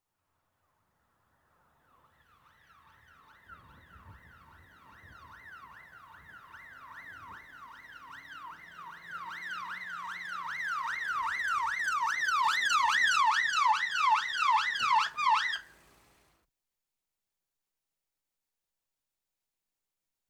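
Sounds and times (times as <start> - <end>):
police car arriving with yelp siren: 2.7 - 15.9.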